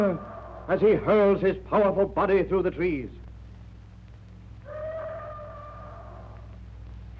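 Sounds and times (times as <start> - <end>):
bull ape roaring at night miles away: 0.0 - 1.3, 4.6 - 6.6
speech: 0.0 - 3.2.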